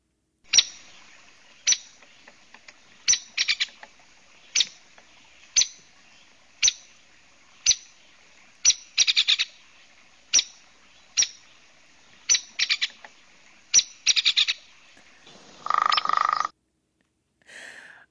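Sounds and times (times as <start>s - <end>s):
hairy woodpecker calls: 0.5s - 16.5s
hairy woodpecker brief rattling burst: 15.3s - 16.5s.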